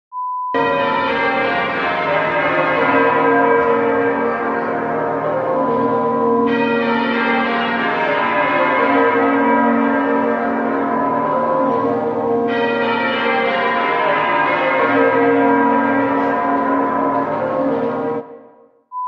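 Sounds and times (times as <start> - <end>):
wedding bells ringing: 0.6 - 18.3.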